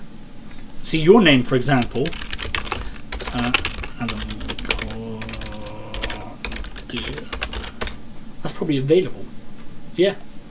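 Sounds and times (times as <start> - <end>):
steady noise: 0.0 - 10.4
speech: 0.9 - 2.3, 3.4 - 4.3, 8.6 - 9.3, 10.0 - 10.3
typing on a computer keyboard: 1.8 - 8.0.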